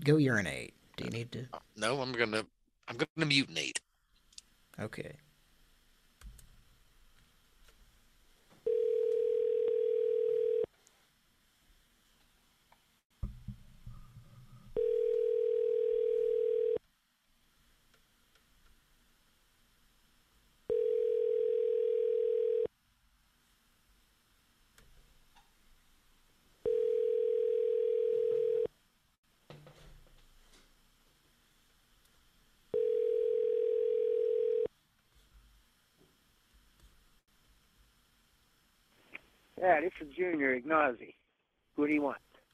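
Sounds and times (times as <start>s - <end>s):
speech: 0.0s - 3.8s, 4.8s - 5.2s, 40.2s - 41.2s, 41.8s - 42.3s
telephone line tone while a number is being called: 8.7s - 10.7s, 14.8s - 16.8s, 20.7s - 22.7s, 26.7s - 28.7s, 32.8s - 34.7s.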